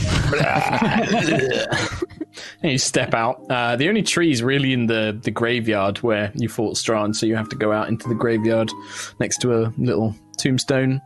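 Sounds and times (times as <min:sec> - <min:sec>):
laughter: 0:00.0 - 0:02.4
person vocally imitating loud retching vomiting: 0:00.1 - 0:01.8
speech: 0:00.3 - 0:11.0.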